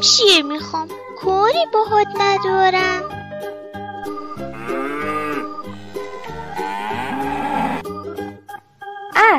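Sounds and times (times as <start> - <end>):
speech: 0.0 - 3.2, 4.4 - 5.3
steady musical backing: 3.9 - 8.1
cow mooing in long low bellows: 4.0 - 7.9.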